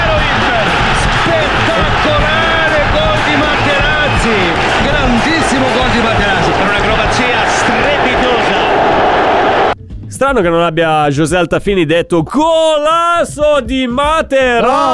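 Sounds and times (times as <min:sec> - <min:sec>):
stadium crowd roaring after a goal: 0:00.0 - 0:09.8
speech: 0:10.2 - 0:14.9.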